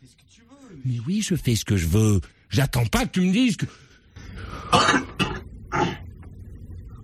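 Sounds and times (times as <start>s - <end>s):
speech: 0.1s - 3.8s
person coughing: 4.6s - 6.1s.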